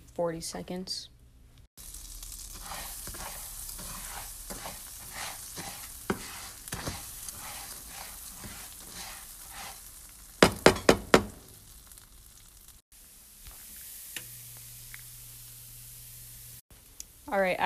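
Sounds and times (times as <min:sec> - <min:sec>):
speech: 0:00.2 - 0:01.1
rice frying in a pan turning golden brown: 0:01.8 - 0:17.6
scrapes of stirring rice in a pan: 0:02.3 - 0:10.1.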